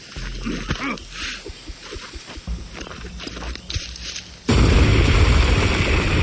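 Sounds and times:
stick of dynamite exploding in a jungle at night: 0:04.5 - 0:06.2.

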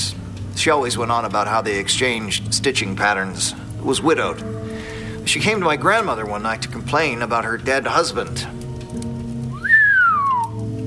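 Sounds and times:
speech: 0:00.6 - 0:08.6
person's dramatic falling whistle: 0:09.5 - 0:10.6.

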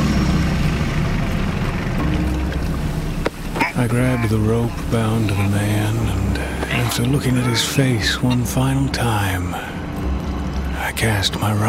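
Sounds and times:
boat engine running: 0:00.0 - 0:11.6
speech: 0:03.8 - 0:09.8, 0:11.0 - 0:11.6.

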